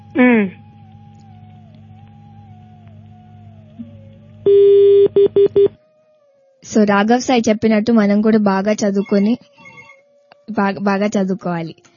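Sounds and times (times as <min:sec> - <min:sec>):
speech: 0:00.2 - 0:00.6, 0:06.8 - 0:09.6, 0:10.5 - 0:11.9
telephone beeps after a caller is cut off on a phone-in line: 0:04.5 - 0:05.8.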